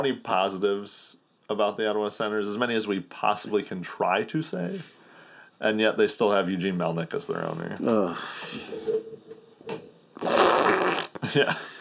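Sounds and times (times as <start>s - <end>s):
speech: 0.0s - 5.0s, 5.6s - 9.0s, 11.3s - 11.7s
audience blowing a collective raspberry imitating a fart noise: 10.2s - 11.2s.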